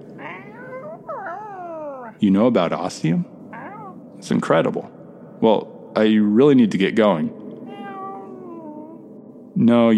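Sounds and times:
cat yowling: 0.2s - 2.2s, 3.6s - 4.0s, 7.7s - 9.0s
speech: 2.2s - 3.3s, 4.2s - 7.4s, 9.6s - 9.9s.

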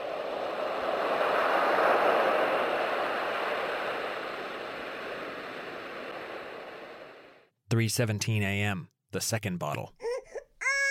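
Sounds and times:
soft rush of ocean-like surf: 0.0s - 7.5s
speech: 7.8s - 10.0s.

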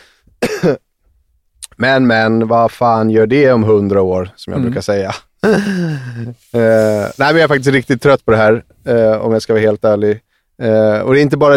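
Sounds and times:
wet chesty cough bringing up phlegm: 0.4s - 0.8s, 5.4s - 6.3s
speech: 0.6s - 0.8s, 1.8s - 11.5s.

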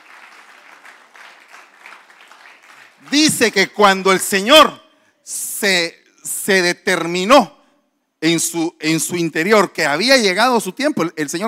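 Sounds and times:
large congregation applauding: 0.0s - 3.6s
speech: 3.0s - 7.6s, 8.2s - 11.4s.

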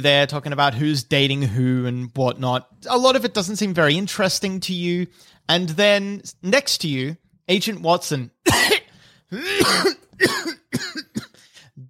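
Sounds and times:
speech: 0.0s - 10.3s
man coughing powerfully: 8.4s - 11.6s.

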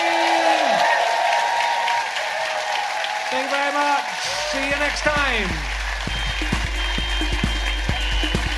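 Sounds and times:
audience cheering: 0.0s - 8.5s
large audience clapping: 0.0s - 8.5s
speech: 3.3s - 5.8s.

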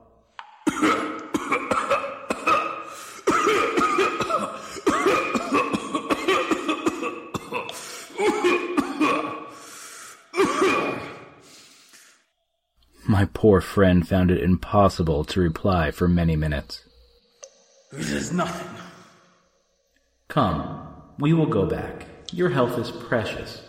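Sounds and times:
person having a long hacking coughing fit: 0.6s - 9.6s, 10.3s - 11.4s, 17.9s - 19.3s
wheezing gasps: 2.8s - 3.3s, 4.5s - 4.9s, 7.7s - 8.2s, 9.4s - 10.4s, 11.1s - 12.3s
speech: 13.4s - 16.9s, 17.9s - 18.8s, 20.4s - 23.6s.

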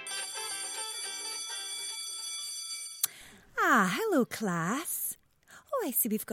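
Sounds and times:
school bell ringing: 0.0s - 3.1s
speech: 3.6s - 4.9s, 5.8s - 6.3s.

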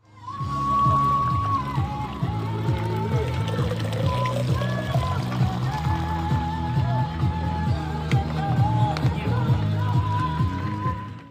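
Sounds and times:
people chattering at a busy outdoor aid station: 0.2s - 11.2s
rhythmic music playing loudly at an outdoor aid station: 0.5s - 11.1s
water pouring into a bottle at an outdoor aid station by a high-altitude lake: 0.6s - 6.5s.

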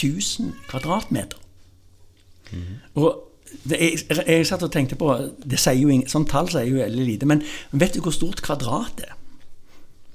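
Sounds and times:
speech: 0.0s - 1.4s, 2.5s - 9.2s
cat meowing: 0.4s - 1.3s.

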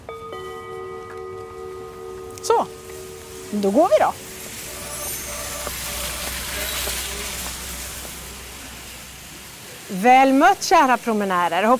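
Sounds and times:
gong struck to mark the turnaround: 0.0s - 8.8s
speech: 2.4s - 2.8s, 3.5s - 4.2s, 9.9s - 11.7s.

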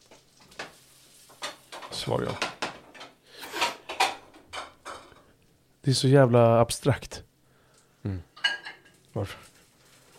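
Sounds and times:
dishes scraping while unloading a dishwasher: 0.6s - 5.3s, 8.4s - 9.0s
speech: 2.0s - 2.5s, 5.8s - 7.2s, 8.0s - 8.3s, 9.2s - 9.4s.

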